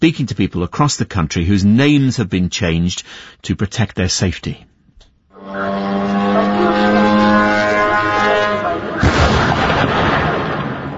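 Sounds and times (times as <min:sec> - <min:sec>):
speech: 0:00.0 - 0:04.7
buzzing engine of a flying drone: 0:05.4 - 0:09.4
noisy rumbling: 0:05.4 - 0:10.9
sudden crash or blast: 0:08.2 - 0:10.9.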